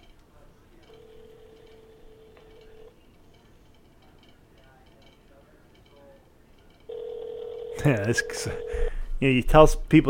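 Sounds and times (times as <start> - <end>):
faint murmur: 0.0 - 8.5
outgoing phone call ringback tone: 0.9 - 2.9, 6.9 - 9.0
speech: 7.8 - 10.0.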